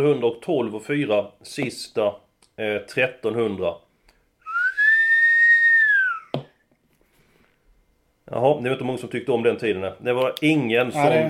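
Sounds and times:
speech: 0.0 - 3.8, 8.3 - 11.2
person whistling: 4.4 - 6.4.

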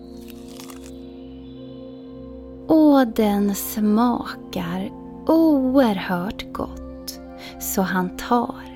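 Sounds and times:
crisp crunches of a small bite into food: 0.0 - 1.0
speech: 3.0 - 8.7.

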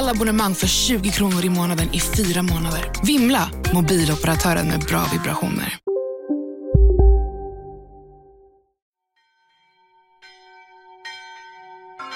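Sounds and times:
speech: 0.1 - 5.8
lighter higher bells chiming: 9.2 - 12.1
large bell striking with deep tone: 10.2 - 12.1.

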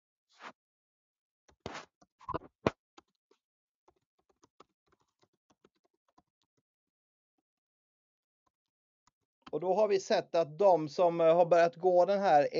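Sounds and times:
typing on a computer keyboard: 3.9 - 6.6
speech: 9.6 - 12.5.

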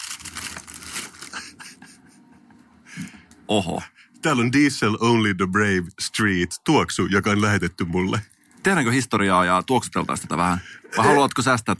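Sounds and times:
stiff black higher-quality paper gift bag rustling and crinkling as it is opened: 0.0 - 1.7
speech: 3.5 - 11.7.

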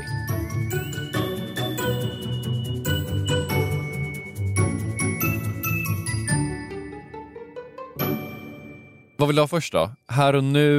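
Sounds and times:
short bright musical jingle with chiming bell-like tones: 0.0 - 9.5
speech: 9.2 - 10.7.

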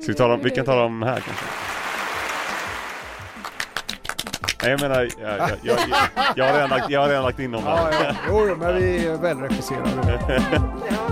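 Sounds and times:
speech: 0.0 - 1.7, 4.6 - 11.0
crowd applauding as a sound effect: 1.2 - 5.1
laughter: 5.3 - 9.0, 9.8 - 11.1.

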